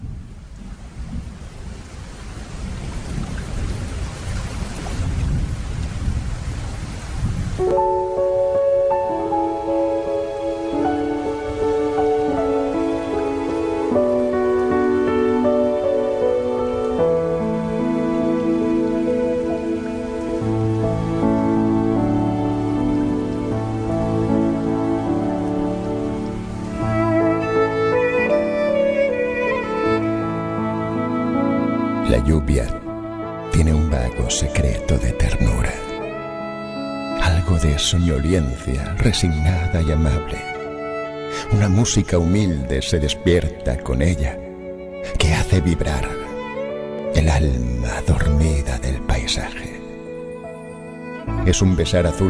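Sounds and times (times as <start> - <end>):
low rumble of thunder: 0.0 - 7.6
steady hissing rain: 0.0 - 31.3
soft instrumental music: 7.6 - 52.2
speech: 37.8 - 40.5, 41.5 - 44.4, 45.5 - 46.2, 47.2 - 49.7, 51.5 - 52.2.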